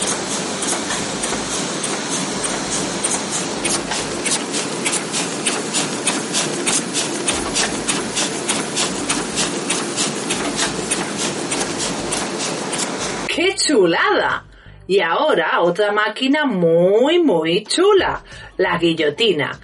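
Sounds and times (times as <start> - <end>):
printing press printing book pages: 0.0 - 13.3
speech: 14.9 - 19.6.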